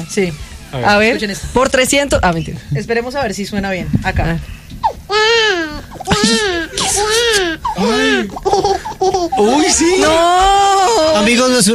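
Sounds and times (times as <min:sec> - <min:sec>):
speech: 0:00.0 - 0:11.7
person imitating a crying baby: 0:04.8 - 0:11.2.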